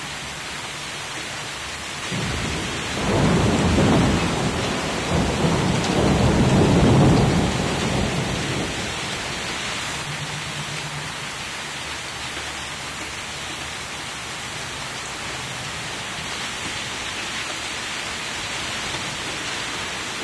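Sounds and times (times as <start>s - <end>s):
rain: 0.0s - 20.2s
thunder: 2.1s - 11.3s.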